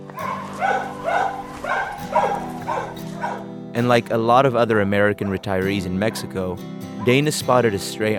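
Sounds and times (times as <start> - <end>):
dog barking: 0.1 - 3.5, 5.2 - 6.3, 7.0 - 7.9
speech: 3.8 - 8.1.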